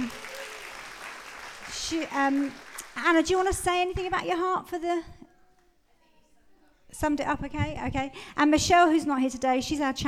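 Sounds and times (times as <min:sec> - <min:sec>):
audience applause at a community gathering: 0:00.0 - 0:03.0
speech: 0:01.9 - 0:05.2, 0:06.9 - 0:10.0.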